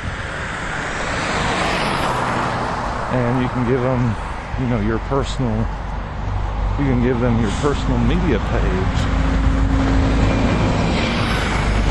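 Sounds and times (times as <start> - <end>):
loud passing road traffic rumbling: 0.0 - 11.8
speech: 3.1 - 5.8, 6.8 - 10.0.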